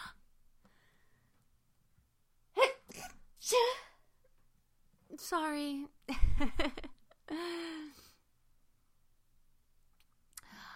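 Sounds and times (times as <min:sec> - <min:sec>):
person sneezing: 0:02.6 - 0:03.8
speech: 0:03.4 - 0:03.8, 0:05.2 - 0:08.0.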